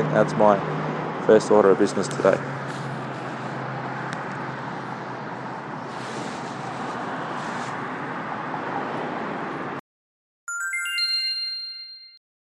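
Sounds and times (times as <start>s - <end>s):
steady rumbling streetcar noise: 0.0s - 9.8s
speech: 0.2s - 0.7s, 1.3s - 2.6s
streetcar chime ringing on board a CL line car: 10.5s - 12.2s.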